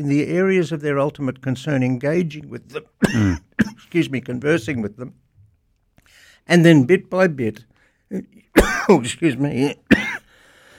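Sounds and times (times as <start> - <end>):
speech: 0.0 - 5.2, 6.4 - 10.1
person clearing throat: 3.0 - 3.9, 8.6 - 9.0, 9.9 - 10.3
person coughing after something went down the throat: 3.0 - 3.9, 8.6 - 9.0, 9.9 - 10.3.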